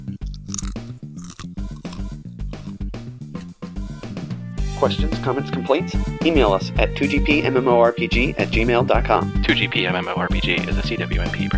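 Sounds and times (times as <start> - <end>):
chewing a crunchy snack: 0.0 - 3.7
speech: 4.8 - 11.5.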